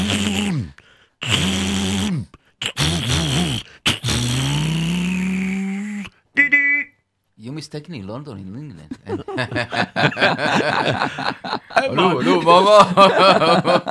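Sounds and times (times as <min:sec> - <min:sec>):
person imitating a chauffeur starting and revving a car engine: 0:00.0 - 0:06.2
speech: 0:07.6 - 0:13.8
laughter: 0:08.9 - 0:13.8.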